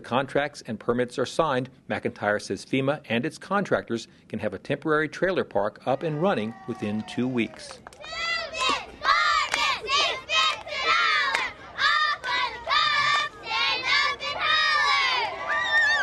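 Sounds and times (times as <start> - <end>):
speech: 0.0 - 8.8
crowd cheering and yelling in the full stands of a high school football stadium at a youth football game: 5.9 - 16.0
many young-sounding voices overlapping: 8.0 - 16.0.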